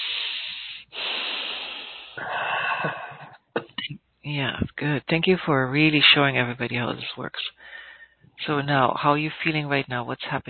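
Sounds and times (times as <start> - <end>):
deep breaths during a guided breathing exercise: 0.0 - 3.4, 7.5 - 8.4
speech: 2.2 - 3.0, 4.3 - 7.6, 8.4 - 10.4.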